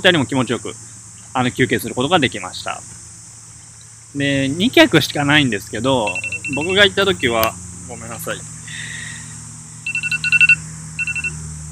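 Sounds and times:
speech: 0.0 - 3.0, 4.1 - 8.9
low steady hum: 0.0 - 11.7
alarm ringing with bright electronic beeps: 6.0 - 6.8, 9.8 - 11.7.

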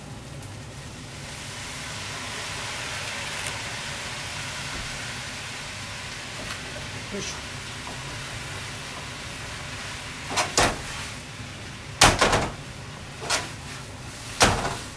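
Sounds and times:
cooking sake poured into a hot pan of vegetables and sausages sizzling: 0.0 - 14.9
speech: 7.1 - 7.5
frying pan of noodles with vegetables and sausages tossed on the stove: 7.7 - 11.1, 12.0 - 14.9.

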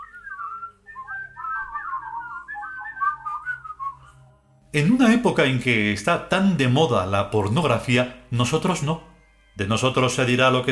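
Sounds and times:
soft wavering whistling of a meandering tune: 0.0 - 4.4
speech: 4.7 - 10.7.

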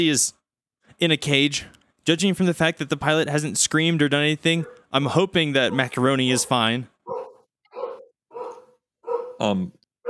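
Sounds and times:
speech: 0.0 - 0.4, 1.0 - 7.2, 9.4 - 9.8
dog barking and yelping aboard a plane: 4.6 - 4.9, 5.6 - 9.4.

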